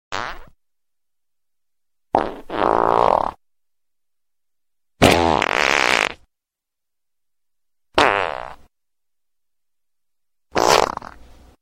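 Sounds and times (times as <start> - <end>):
fart: 0.1 - 0.6, 2.1 - 3.4, 5.0 - 6.3, 8.0 - 8.6, 10.5 - 11.2.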